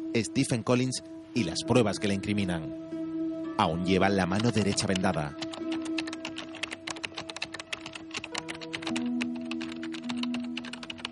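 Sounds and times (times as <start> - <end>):
speech: 0.2 - 3.0, 3.6 - 5.6
journalist typing a news article on a computer keyboard: 4.3 - 11.1.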